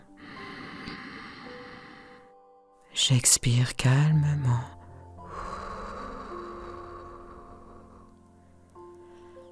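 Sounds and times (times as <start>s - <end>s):
slow gentle inhale through the nose: 0.2s - 2.3s, 5.2s - 9.5s
speech: 3.0s - 4.8s.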